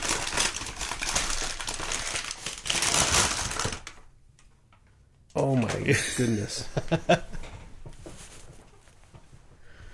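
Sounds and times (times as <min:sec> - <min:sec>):
paper bag holding a bourbon bottle gift crinkling as it is opened: 0:00.0 - 0:04.1
speech: 0:05.4 - 0:07.4.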